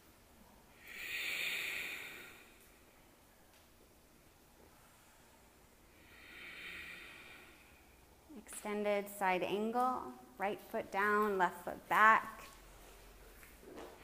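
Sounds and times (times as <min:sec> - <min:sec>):
slow deep breathing during a yoga flow class: 0:00.4 - 0:03.4, 0:04.6 - 0:08.3
speech: 0:08.7 - 0:12.4.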